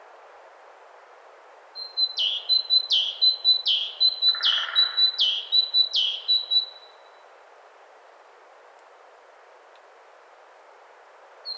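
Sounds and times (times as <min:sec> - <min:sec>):
great tit Parus major singing: 0:01.8 - 0:06.9.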